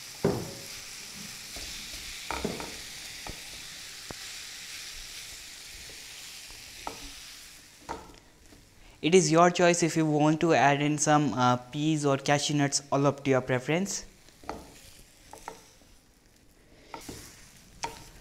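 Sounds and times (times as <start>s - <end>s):
boiled mashed potatoes sizzling in frying masala in a pan: 0.0s - 8.7s, 14.0s - 18.2s
speech: 9.0s - 14.1s.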